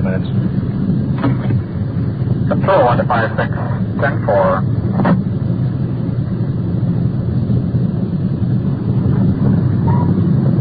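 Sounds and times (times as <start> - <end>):
car engine rumble driving slowly into a circular driveway: 0.0 - 10.5
road noise: 0.0 - 10.5
wind noise: 0.0 - 10.5
speech: 2.7 - 5.2.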